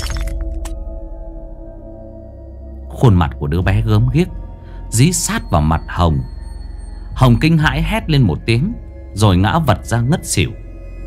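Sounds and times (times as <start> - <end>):
mirror glass shattering when struck: 0.0 - 0.8
speech: 3.0 - 6.3, 7.2 - 10.6.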